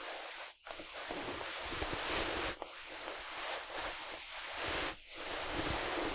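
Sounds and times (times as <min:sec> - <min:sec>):
cloth: 0:00.0 - 0:06.1.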